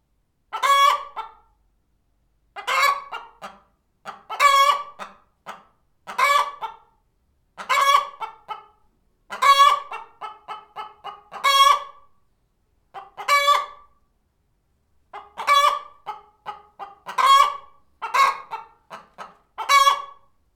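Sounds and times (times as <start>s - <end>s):
chicken clucking: 0.5s - 1.6s, 2.5s - 7.0s, 7.6s - 12.2s, 12.9s - 14.0s, 15.1s - 20.4s
chicken squawking: 0.6s - 1.4s, 2.6s - 3.5s, 4.1s - 5.1s, 6.1s - 6.8s, 7.6s - 8.6s, 9.3s - 12.0s, 13.0s - 13.9s, 15.2s - 20.3s.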